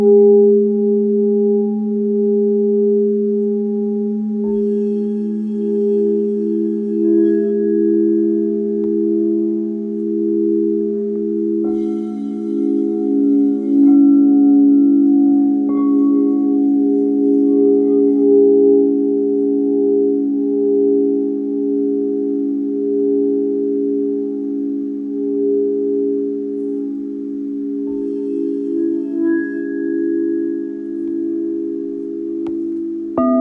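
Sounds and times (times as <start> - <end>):
singing bowls holding a steady humming drone: 0.0 - 33.3
singing bowl strikes ringing with bright overtones: 4.4 - 21.1, 27.9 - 32.6.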